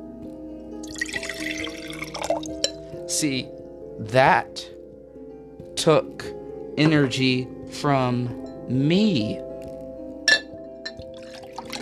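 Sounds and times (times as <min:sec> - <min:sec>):
glass clinking: 0:00.8 - 0:02.8, 0:10.3 - 0:11.7
liquid trickling and splashing into a glass: 0:00.8 - 0:02.8, 0:10.9 - 0:11.7
speech: 0:02.4 - 0:04.7, 0:05.8 - 0:09.5.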